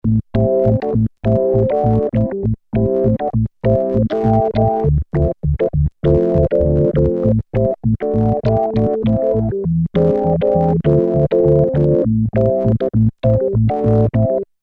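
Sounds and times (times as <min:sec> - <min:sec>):
organ sound on a Roland Alpha Juno synth: 0:00.0 - 0:14.5.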